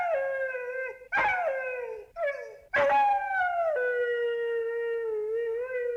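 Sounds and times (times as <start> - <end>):
dog howling in wavering singing-like tones: 0.0 - 5.9.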